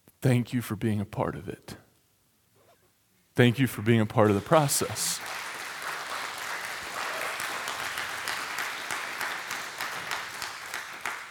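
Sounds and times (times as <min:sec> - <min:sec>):
speech: 0:00.2 - 0:01.8, 0:03.4 - 0:05.4
crowd clapping: 0:04.1 - 0:11.2.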